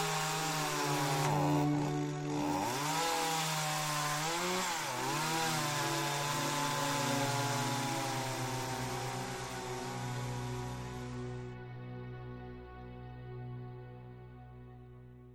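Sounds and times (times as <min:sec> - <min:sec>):
chainsaw running and revving: 0:00.0 - 0:11.4.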